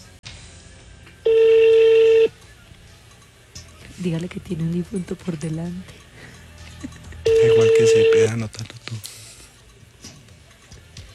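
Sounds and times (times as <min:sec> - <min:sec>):
steady telephone beep from a voicemail system transferring a call: 0:01.3 - 0:02.3, 0:07.2 - 0:08.4
speech: 0:04.0 - 0:06.0, 0:07.6 - 0:09.1.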